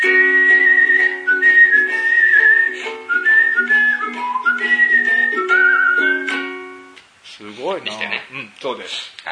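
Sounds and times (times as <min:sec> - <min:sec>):
whistled theme-song melody: 0:00.0 - 0:07.0
instrumental backing: 0:00.0 - 0:07.1
speech: 0:08.6 - 0:09.2.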